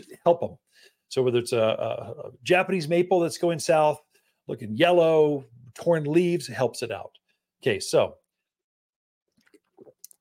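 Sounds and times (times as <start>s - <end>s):
speech: 0.2s - 8.2s
quick quiet sip from a drink: 9.3s - 10.2s
soft wet mouth and swallowing noises: 9.3s - 10.2s.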